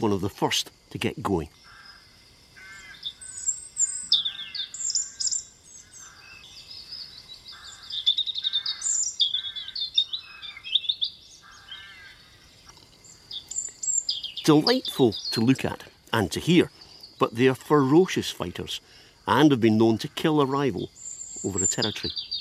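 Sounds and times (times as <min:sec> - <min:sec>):
speech: 0:00.0 - 0:01.6, 0:14.5 - 0:22.3
rooks squawking with rough harsh caws: 0:01.3 - 0:22.3
blue tit singing bright high repeated chirping phrases: 0:02.6 - 0:12.3, 0:13.0 - 0:18.3, 0:19.7 - 0:22.3.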